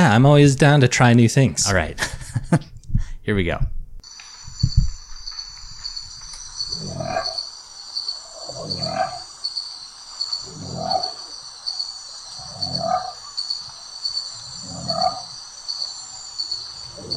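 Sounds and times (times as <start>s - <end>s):
speech: 0.0s - 3.8s
crickets chirping: 4.0s - 17.1s
deep animal call: 6.6s - 7.5s, 8.1s - 9.5s, 10.2s - 17.1s.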